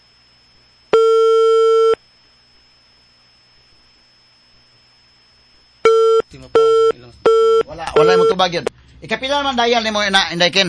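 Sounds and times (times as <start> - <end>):
telephone busy signal on a call to a landline: 0.9 - 2.0, 5.8 - 8.4
speech: 6.3 - 10.6.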